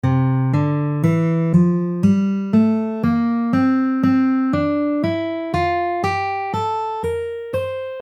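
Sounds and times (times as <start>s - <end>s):
guitar playing in D Mixolydian mode: 0.0s - 8.0s.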